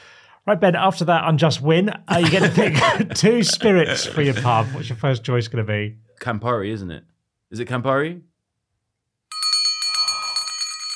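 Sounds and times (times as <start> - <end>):
speech: 0.4 - 8.3
laughter: 2.1 - 5.0
bright metallic bell ringing rapidly: 9.3 - 10.9.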